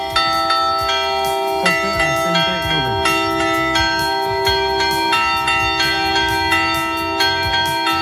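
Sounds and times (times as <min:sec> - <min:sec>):
church bell ringing a storm-warning toll: 0:00.0 - 0:08.0.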